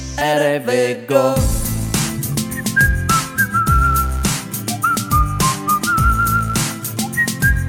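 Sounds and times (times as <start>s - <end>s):
speech: 0.2s - 1.6s
steady backing beat with deep bass and drums: 1.4s - 7.6s
high clear whistle playing a short repeating melody: 2.3s - 7.6s.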